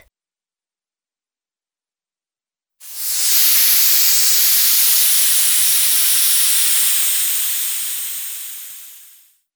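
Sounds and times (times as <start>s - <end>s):
long hiss: 2.8s - 9.3s.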